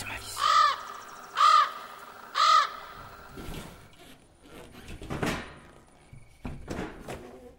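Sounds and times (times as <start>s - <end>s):
bird cawing: 0.0s - 3.6s.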